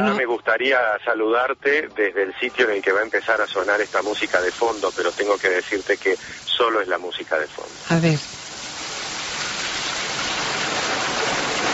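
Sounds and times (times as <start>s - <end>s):
speech: 0.0s - 8.4s
steady rush of flowing water: 2.4s - 11.7s.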